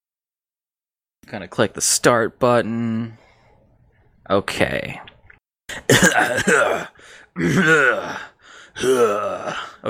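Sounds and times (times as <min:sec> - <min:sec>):
speech: 0:01.3 - 0:03.2, 0:04.3 - 0:05.1, 0:05.8 - 0:09.8
person clearing throat: 0:05.7 - 0:08.1.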